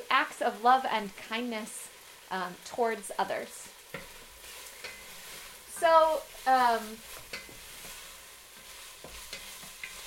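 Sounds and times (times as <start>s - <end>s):
onions and garlic frying in a pan: 0.0s - 10.0s
speech: 0.4s - 3.7s, 5.8s - 7.2s
stirring clicks and scrapes: 3.9s - 5.7s, 6.3s - 10.0s.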